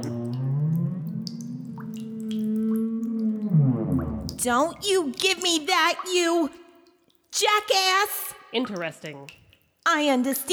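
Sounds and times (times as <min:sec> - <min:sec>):
whale-like moan behind an elevator door: 0:00.0 - 0:04.4
faint dripping plinks: 0:00.0 - 0:07.4, 0:08.3 - 0:10.4
speech: 0:04.4 - 0:06.6, 0:07.3 - 0:10.5.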